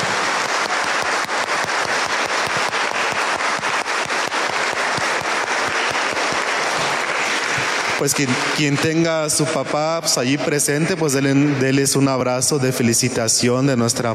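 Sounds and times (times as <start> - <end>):
church audience applauding: 0.0 - 9.9
speech: 8.0 - 14.1.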